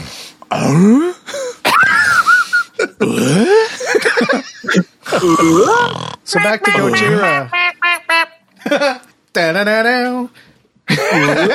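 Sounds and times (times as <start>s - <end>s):
person imitating snoring with wheezy gargly inhale-exhale sounds: 0.0s - 1.3s, 3.0s - 3.7s, 5.1s - 6.3s
speech: 0.6s - 1.2s, 3.0s - 3.6s, 5.2s - 7.6s, 8.7s - 11.5s
laughter: 1.7s - 5.8s, 6.4s - 9.1s, 10.9s - 11.5s.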